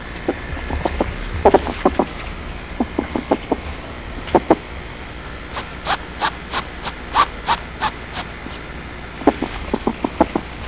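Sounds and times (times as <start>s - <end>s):
ferret clucking and huffing: 0.3s - 3.7s, 5.5s - 10.6s.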